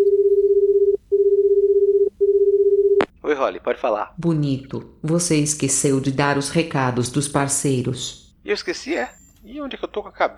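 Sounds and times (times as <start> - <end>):
steady mid-pitched telephone tone as a call is placed: 0.0 - 3.0
speech: 3.4 - 10.3.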